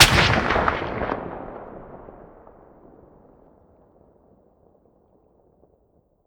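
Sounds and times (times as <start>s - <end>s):
suppressed sniper rifle fire by player outdoors: 0.0s - 2.8s.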